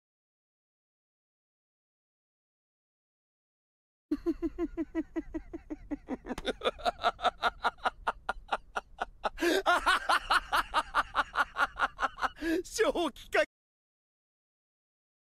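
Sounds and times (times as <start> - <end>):
person laughing maniacally: 4.1 - 12.6.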